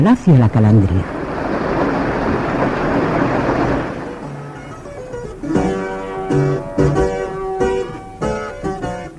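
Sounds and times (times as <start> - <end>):
speech: 0.0 - 1.2, 2.6 - 3.2
rain falling: 0.2 - 9.1
gentle music with distinct ringing notes: 4.0 - 9.1.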